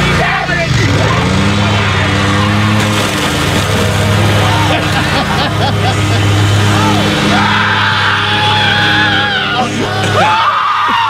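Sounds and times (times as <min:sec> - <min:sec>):
lawnmower engine revving to run over video games: 0:00.0 - 0:11.0
laughter: 0:01.8 - 0:11.0
boy yelling and shrieking excitedly: 0:06.8 - 0:11.0.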